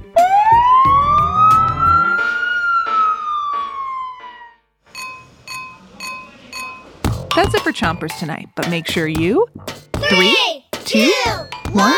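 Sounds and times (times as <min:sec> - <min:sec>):
fire truck siren wailing: 0:00.0 - 0:04.7
speech: 0:07.7 - 0:11.9.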